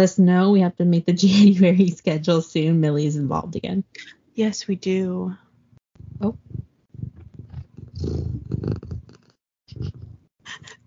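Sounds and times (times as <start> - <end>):
speech: 0.0 - 5.4, 6.0 - 6.7, 8.0 - 8.4
cat purring: 6.0 - 10.3.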